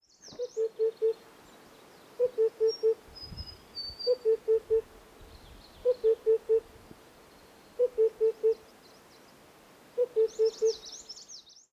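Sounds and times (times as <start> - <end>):
gluhaya kukushka Cuculus saturatus: 0.2 - 1.3, 2.0 - 6.9, 7.7 - 9.2, 9.9 - 11.0.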